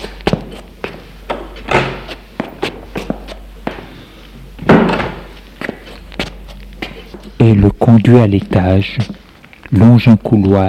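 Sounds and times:
footsteps shuffling across a room: 0.0s - 10.6s
heavier door thuds: 4.7s - 5.3s
speech: 7.4s - 10.6s.

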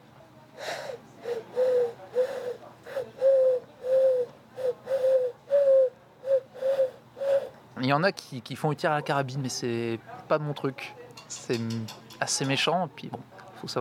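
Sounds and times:
person imitating a turtle dove's call: 0.6s - 7.5s
speech: 7.9s - 13.7s.

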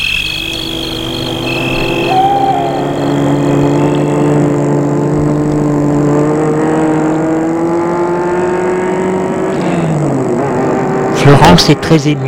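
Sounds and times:
car engine humming as the vehicle pulls away: 0.0s - 11.4s
speech: 11.4s - 12.2s.

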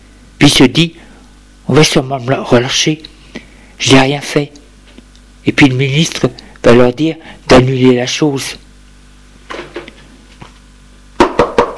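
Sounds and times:
speech: 0.5s - 1.1s, 1.7s - 4.6s, 5.4s - 8.6s
knocking on a door: 11.2s - 11.7s.

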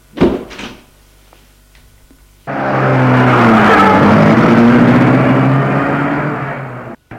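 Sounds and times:
rushing tire noise: 2.5s - 7.0s
car engine roaring and accelerating away: 2.5s - 7.1s.

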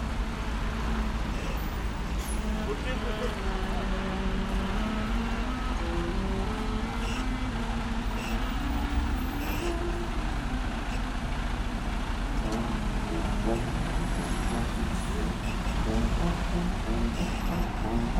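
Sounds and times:
heavy truck engine rumbling in traffic: 0.0s - 18.1s
surrounding road traffic noise: 0.0s - 18.1s
voices: 1.2s - 8.8s, 12.3s - 18.1s.

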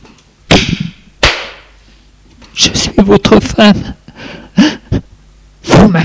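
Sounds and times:
slap across the face: 0.5s - 1.7s
speech: 2.6s - 4.0s.

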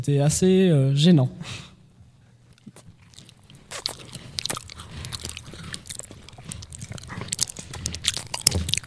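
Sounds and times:
speech: 0.0s - 1.7s
wet chewing and crunching while eating: 2.4s - 8.8s.

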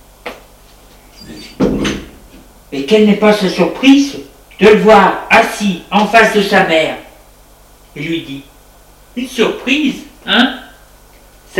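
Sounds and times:
door opening: 1.2s - 2.2s
speech: 2.7s - 7.0s, 8.0s - 8.5s, 9.2s - 10.6s.

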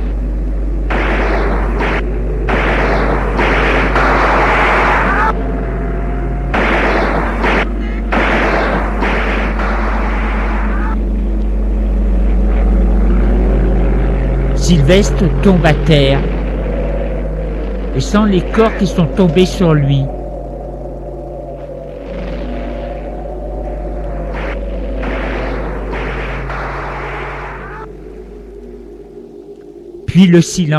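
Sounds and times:
low drone of a propeller aircraft engine: 0.0s - 30.7s
loud machine-gun fire from an airplane: 0.9s - 5.4s, 6.5s - 11.0s, 24.3s - 27.9s
speech: 14.7s - 16.4s, 18.0s - 20.2s, 30.2s - 30.7s.

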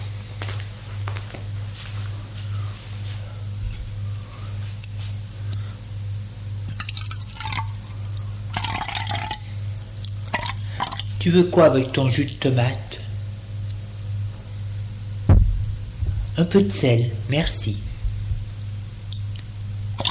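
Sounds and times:
steady low hum: 1.6s - 20.1s
water poured from a carafe: 6.7s - 7.8s, 8.5s - 9.4s
speech: 11.2s - 12.9s, 16.4s - 17.8s.

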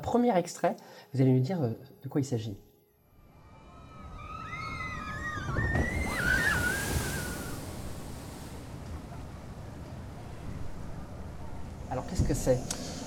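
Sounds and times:
speech: 0.1s - 2.7s, 12.2s - 12.8s
people squealing: 3.3s - 7.7s
amusement park water ride plunging into a pool: 3.9s - 11.5s
churning water sloshing: 5.3s - 11.4s.

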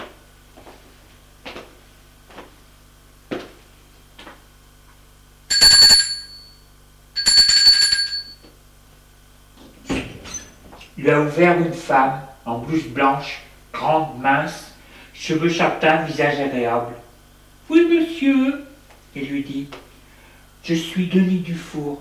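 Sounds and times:
doorbell buzzing at a doctor's door: 5.5s - 8.5s
speech: 11.1s - 17.0s, 18.2s - 18.6s, 19.2s - 19.8s, 20.6s - 22.0s.

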